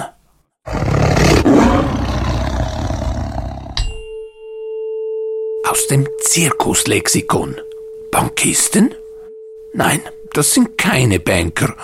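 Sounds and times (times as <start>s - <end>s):
tiger roaring: 0.6s - 3.8s
steady tonal hum: 3.8s - 11.8s
speech: 5.7s - 9.0s, 9.7s - 11.8s.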